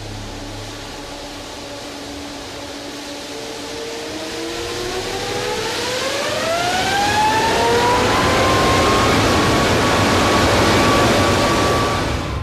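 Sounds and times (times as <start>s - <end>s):
jet engine throttled up to full power during a blade-off test: 0.0s - 12.4s.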